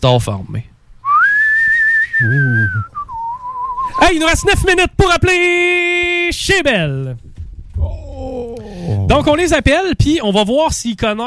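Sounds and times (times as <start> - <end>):
speech: 0.0 - 0.7, 2.1 - 3.0, 3.8 - 11.2
long steady human whistle: 1.0 - 4.1
brief low voiced hum or murmur: 2.2 - 3.0, 7.8 - 9.3.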